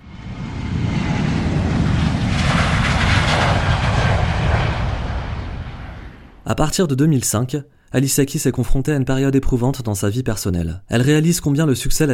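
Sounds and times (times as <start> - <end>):
airplane engine roaring on takeoff run: 0.0 - 6.6
speech: 6.6 - 12.1.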